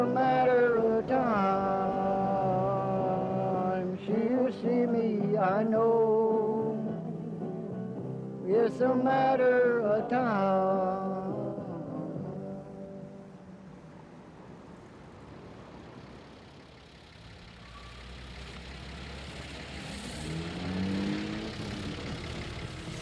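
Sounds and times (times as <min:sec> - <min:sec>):
car engines idling in heavy traffic jam: 0:00.0 - 0:23.0
music: 0:01.8 - 0:13.4
speech: 0:08.6 - 0:11.1.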